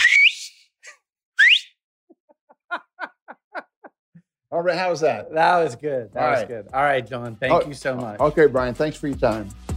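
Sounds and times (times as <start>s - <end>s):
loud rising human whistles: 0.0s - 0.6s, 1.4s - 1.8s
laughter: 2.3s - 3.9s
speech: 4.5s - 9.6s.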